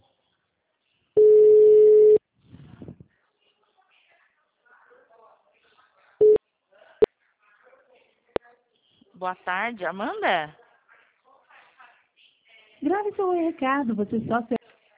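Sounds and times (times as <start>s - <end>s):
telephone ringback tone on an outgoing call: 1.2s - 2.2s
speech: 9.2s - 10.6s, 13.1s - 14.6s.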